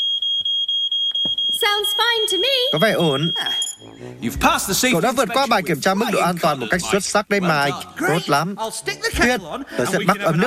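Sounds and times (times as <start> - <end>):
newly installed smoke alarm being tested: 0.0 - 6.0
speech: 1.6 - 10.4
laughter: 3.4 - 10.4.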